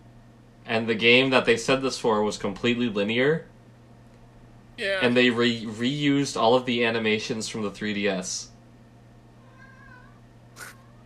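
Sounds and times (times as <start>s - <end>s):
low steady hum: 0.0s - 11.0s
speech: 0.7s - 3.5s, 4.8s - 8.5s
cat giving a drawn-out wavering meow: 9.4s - 11.0s.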